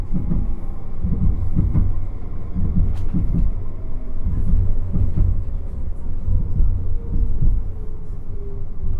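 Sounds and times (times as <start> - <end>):
tram rumbling through the city, heard from inside the car: 0.0 - 8.9
tram clunks and rattles: 0.1 - 3.6, 4.2 - 7.7.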